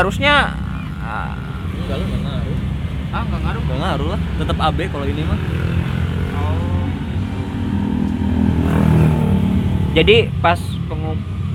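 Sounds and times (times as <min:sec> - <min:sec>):
speech: 0:00.0 - 0:02.5, 0:03.1 - 0:05.8, 0:10.0 - 0:11.5
laughter: 0:00.0 - 0:07.0
car passing by: 0:00.4 - 0:10.4.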